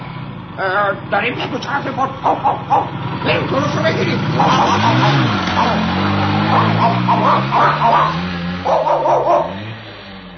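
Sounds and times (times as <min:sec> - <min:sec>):
motorcycle engine revving: 0:00.0 - 0:10.3
speech: 0:00.6 - 0:09.1
dogs barking and yipping: 0:01.8 - 0:03.1, 0:04.3 - 0:09.8.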